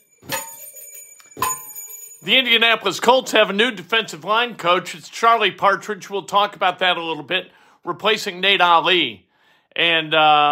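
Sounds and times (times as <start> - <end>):
bell ringing: 0.0 - 2.8
speech: 2.2 - 9.2, 9.8 - 10.5.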